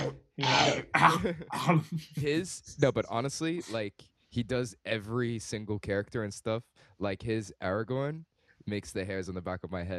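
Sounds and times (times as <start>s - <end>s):
person imitating an audiobook narrator clearing his throat: 0.0s - 3.9s
speech: 0.4s - 9.9s.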